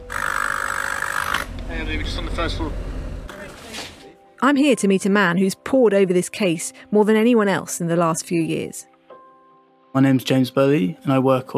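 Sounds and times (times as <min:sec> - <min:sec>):
loud droning engine: 0:01.2 - 0:03.3
low rumble of heavy traffic on a street in Clerkenwell, central London: 0:01.4 - 0:04.0
passing vehicles: 0:01.4 - 0:04.0
speech: 0:01.8 - 0:02.9, 0:04.4 - 0:08.9, 0:10.0 - 0:11.5.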